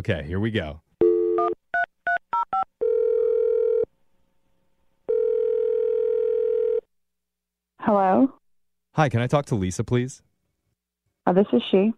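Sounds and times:
speech: 0:00.0 - 0:00.8, 0:07.9 - 0:08.4, 0:09.0 - 0:10.3, 0:11.2 - 0:11.9
long steady telephone ringback tones: 0:01.0 - 0:03.9, 0:05.1 - 0:06.9.

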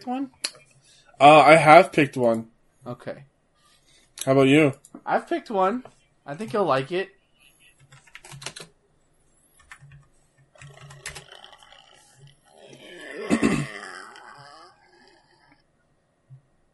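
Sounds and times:
speech: 0:00.0 - 0:00.5, 0:01.2 - 0:03.3, 0:04.2 - 0:07.2
keyboard typing clicks: 0:09.6 - 0:11.8
long low croaking burp: 0:11.2 - 0:15.6.

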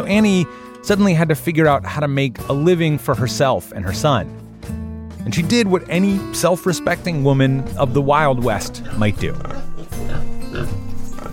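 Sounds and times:
speech: 0:00.0 - 0:09.7
pig grunting and oinking: 0:08.7 - 0:11.3.

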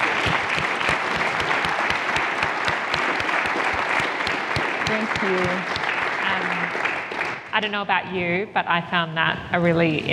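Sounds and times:
audience applause: 0:00.0 - 0:07.5
speech: 0:04.9 - 0:05.8, 0:07.6 - 0:10.1.

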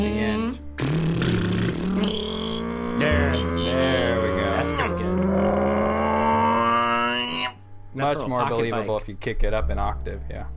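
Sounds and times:
person vocally imitating a revving engine: 0:00.8 - 0:07.4
speech: 0:08.0 - 0:10.5.

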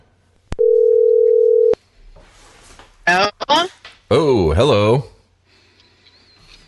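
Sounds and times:
phone dial tone: 0:00.6 - 0:01.8
speech: 0:03.1 - 0:05.1.

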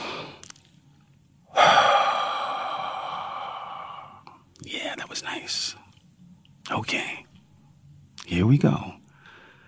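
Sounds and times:
deep breath taken as a calm breathing exercise: 0:01.5 - 0:04.4, 0:09.1 - 0:09.6
speech: 0:08.4 - 0:08.9.

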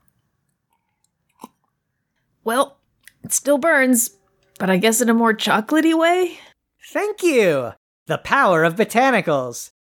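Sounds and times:
sipping homemade cocoa-infused rum from a glass: 0:00.7 - 0:01.8
speech: 0:02.4 - 0:09.8.

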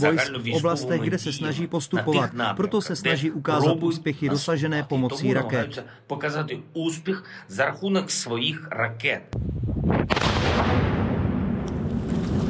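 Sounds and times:
speech: 0:00.0 - 0:09.6
controlled detonation blasts of unexploded munitions and mines: 0:09.4 - 0:12.4.

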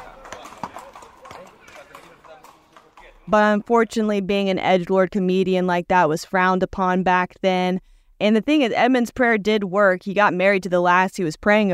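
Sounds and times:
horse hooves clip-clopping: 0:00.0 - 0:05.3
speech: 0:03.3 - 0:11.7.

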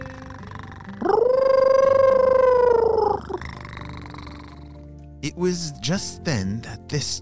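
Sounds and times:
faint low purring rumble: 0:00.0 - 0:05.1
cat yowling with a howl-like yowl: 0:01.0 - 0:03.4
speech: 0:05.2 - 0:07.2.

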